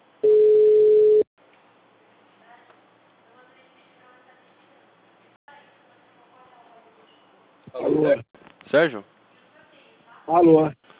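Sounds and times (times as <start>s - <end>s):
telephone ringback tone while placing a call: 0.2s - 1.3s
speech: 7.9s - 9.1s, 10.3s - 10.8s.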